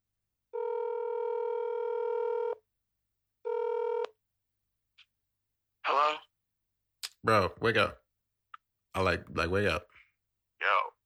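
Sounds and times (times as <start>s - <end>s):
steady electronic phone ringback tone: 0.5s - 2.6s, 3.5s - 4.1s
speech: 7.2s - 8.0s, 9.0s - 9.9s.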